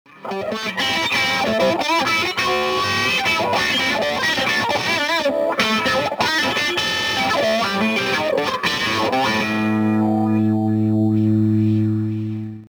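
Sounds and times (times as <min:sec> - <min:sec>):
Fulltone Clyde Wah Deluxe wah effect: 0:00.2 - 0:12.6.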